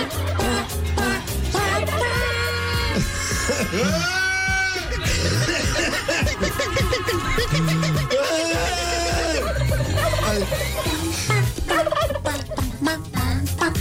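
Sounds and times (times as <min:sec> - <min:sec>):
laughter: 0:00.0 - 0:13.2
human voice imitating a turkey gobble: 0:11.7 - 0:12.4.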